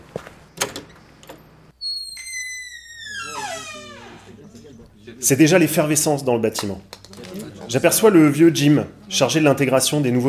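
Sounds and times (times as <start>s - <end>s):
faint room noise: 0.0s - 10.2s
office building entrance door pushed open: 1.7s - 4.8s
speech: 5.1s - 7.0s, 7.7s - 10.2s.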